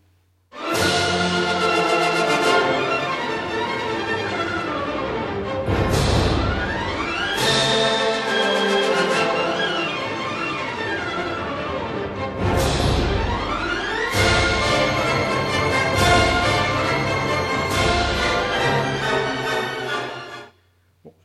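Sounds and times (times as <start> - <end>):
loud full-bodied music with sustained tones and accented hits: 0.6 - 20.4.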